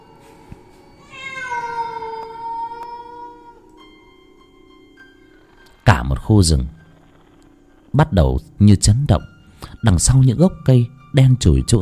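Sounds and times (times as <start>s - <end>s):
low hiss: 0.0s - 11.8s
wild cats yowling eerily across a stream: 1.1s - 3.7s
speech: 6.0s - 6.8s, 7.9s - 11.8s.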